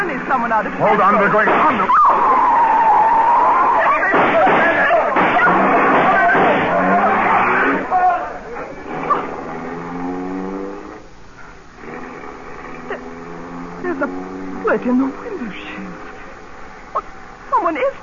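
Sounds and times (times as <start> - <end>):
long screeching car tire skids: 0.0 - 18.0
speeding car engine roaring: 0.0 - 18.0
speech: 0.3 - 2.5, 14.7 - 15.6
raised voices crying out: 1.1 - 9.4
sharp knocks of a car striking a man: 4.1 - 6.8.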